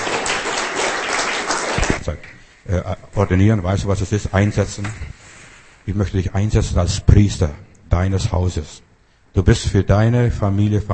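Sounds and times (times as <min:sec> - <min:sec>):
crowd applauding: 0:00.0 - 0:02.0
speech: 0:02.1 - 0:05.2, 0:05.8 - 0:10.9.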